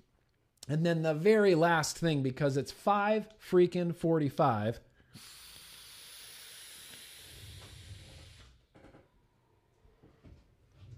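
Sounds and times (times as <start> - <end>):
speech: 0.7 - 5.4
airy hiss of someone drawing on a vape: 5.0 - 8.6
breathy exhaling: 5.0 - 8.7.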